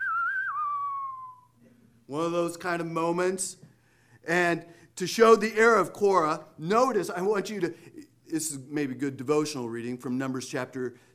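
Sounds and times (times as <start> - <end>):
person whistling a showdown-style melody: 0.0 - 1.6
speech: 2.1 - 3.6, 4.2 - 11.1.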